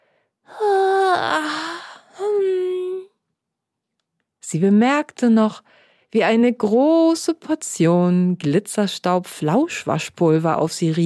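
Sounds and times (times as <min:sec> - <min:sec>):
person giving a drawn-out voiced yawn: 0:00.5 - 0:03.1
speech: 0:04.5 - 0:11.0.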